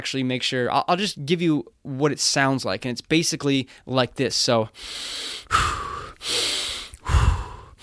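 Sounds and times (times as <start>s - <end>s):
speech: 0.0s - 6.5s
deep breaths drawn in through the nose and pushed out: 4.8s - 7.8s.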